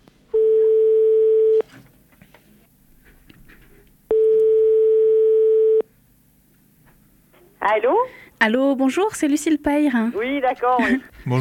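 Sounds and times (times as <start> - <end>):
faint noise: 0.0 - 11.4
telephone line tones as a recorded phone call begins: 0.4 - 1.6, 4.1 - 5.9
speech: 7.8 - 11.4.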